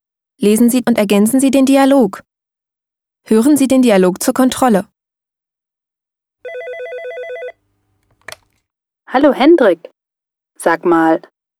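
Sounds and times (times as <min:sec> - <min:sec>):
speech: 0:00.4 - 0:02.3, 0:03.2 - 0:04.9, 0:09.1 - 0:09.9, 0:10.6 - 0:11.3
electronic telephone ring with rapid warbling trills: 0:06.4 - 0:07.6.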